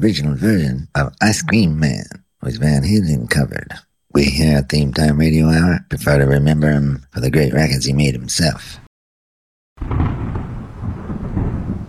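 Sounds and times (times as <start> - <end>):
speech: 0.0 - 8.8
deep continuous rumble of thunder: 9.8 - 11.8
rain hissing: 9.8 - 11.8.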